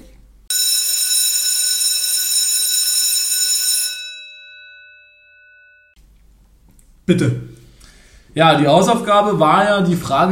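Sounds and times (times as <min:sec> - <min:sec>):
loud electric bell ringing: 0:00.5 - 0:06.0
speech: 0:07.1 - 0:07.5, 0:08.4 - 0:10.3.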